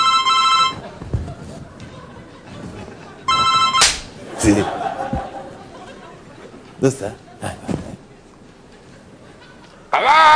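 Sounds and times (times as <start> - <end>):
mobile phone ringtone: 0.0 - 0.8, 3.3 - 3.8
murmuring room noise: 0.0 - 10.3
laughter: 0.8 - 3.4, 4.2 - 8.1, 8.9 - 9.9
speech: 4.4 - 4.8, 6.8 - 7.7.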